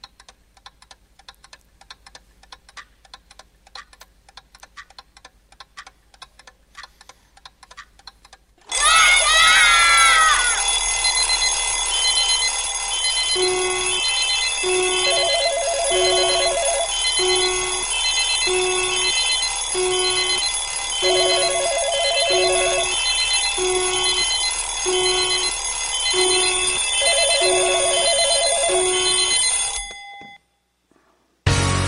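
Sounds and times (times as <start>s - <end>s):
alarm clock ringing with electronic beeps and trills: 8.7s - 30.4s.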